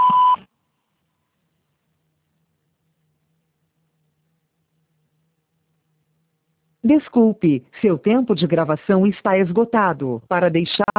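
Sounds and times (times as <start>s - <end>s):
voicemail beep signalling start of message recording: 0.0s - 0.4s
speech: 6.9s - 10.9s.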